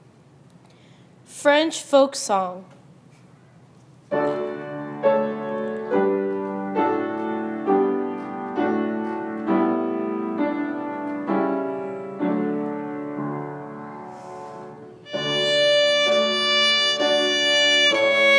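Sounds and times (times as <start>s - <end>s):
French folk song with piano: 4.2s - 18.3s.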